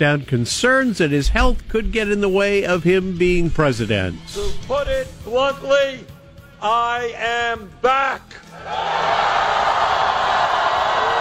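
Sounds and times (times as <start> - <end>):
speech: 0.0 - 9.6
large crowd cheering at a campaign rally: 8.5 - 11.1.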